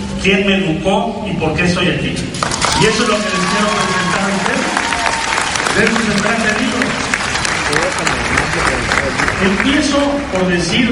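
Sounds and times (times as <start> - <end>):
speech: 0.2 - 4.7, 5.8 - 6.8, 7.7 - 10.9
large audience applause: 2.4 - 10.4.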